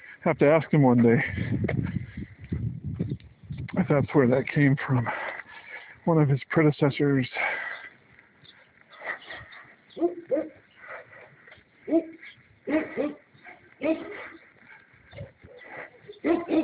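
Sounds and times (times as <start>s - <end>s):
speech: 0.2s - 1.8s, 3.9s - 5.2s, 6.1s - 7.5s
large dog barking: 10.0s - 14.9s, 15.6s - 16.6s.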